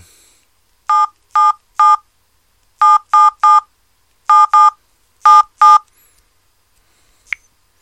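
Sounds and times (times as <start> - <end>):
phone keypad dialing tones: 0.9 - 2.0, 2.8 - 3.6, 4.3 - 5.9.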